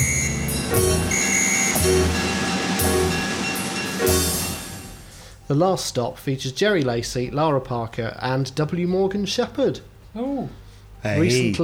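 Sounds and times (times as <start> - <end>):
heavy rhythmic clunks of a train: 0.0 - 5.2
thin high metallic squealing tones: 0.0 - 5.3
train rumbling: 0.0 - 5.5
speech: 5.5 - 11.6.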